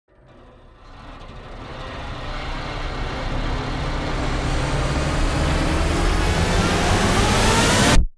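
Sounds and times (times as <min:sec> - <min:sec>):
intense metal wires riser: 0:00.1 - 0:08.0.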